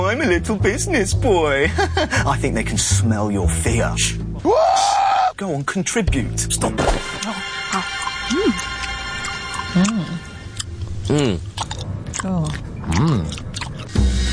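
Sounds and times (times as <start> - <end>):
speech: 0.1 - 7.5
loud wet gum chewing: 7.0 - 14.2
murmured vocal sounds: 11.1 - 11.6, 12.2 - 13.5.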